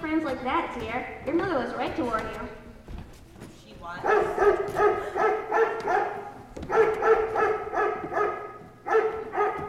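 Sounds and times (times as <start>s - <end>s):
speech: 0.3s - 2.6s, 3.8s - 6.1s
pack of gun dogs barking and baying: 4.0s - 9.6s.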